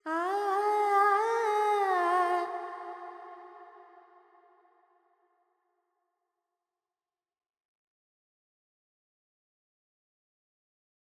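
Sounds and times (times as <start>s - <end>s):
Carnatic female vocal alap in G pentatonic: 0.0s - 4.4s.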